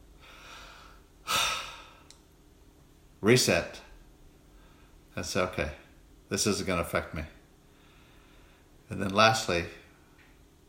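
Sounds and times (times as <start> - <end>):
deep breath: 0.2 - 2.1, 7.6 - 8.8
speech: 3.2 - 3.8, 5.2 - 7.4, 8.9 - 9.8.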